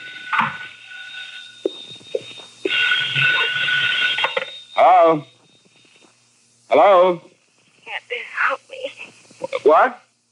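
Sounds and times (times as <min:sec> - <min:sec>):
telephone ringing with a bright jangling bell: 0:00.0 - 0:06.0
speech: 0:05.0 - 0:05.3, 0:06.7 - 0:07.3, 0:09.6 - 0:10.0.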